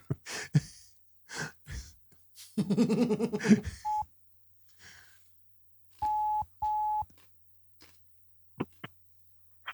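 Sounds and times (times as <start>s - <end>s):
laughter: 2.5s - 3.9s
speech: 2.6s - 3.9s
telephone dialing tones placing a call: 6.0s - 7.0s.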